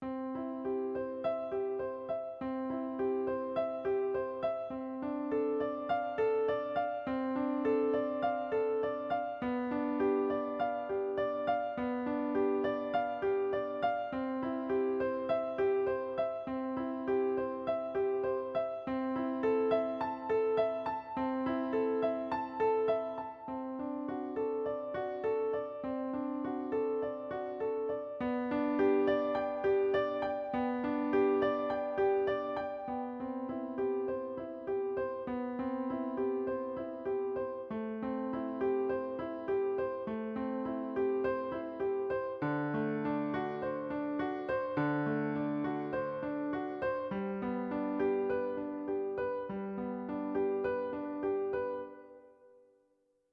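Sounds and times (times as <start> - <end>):
grand piano: 0.0 - 52.6.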